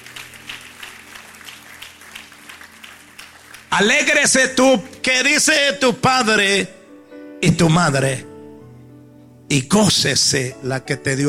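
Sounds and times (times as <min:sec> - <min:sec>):
crowd applauding: 0:00.0 - 0:05.2
speech: 0:03.7 - 0:06.8, 0:07.5 - 0:08.3, 0:09.5 - 0:11.2.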